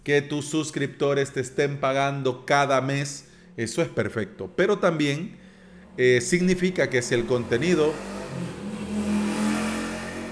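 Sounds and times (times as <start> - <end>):
speech: 0.0 - 5.4, 6.0 - 8.5
motorcycle engine revving as it passes: 5.4 - 10.2.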